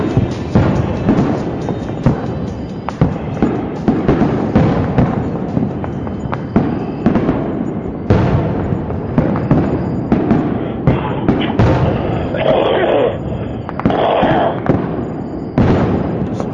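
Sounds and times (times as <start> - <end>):
fireworks exploding: 0.0 - 16.5.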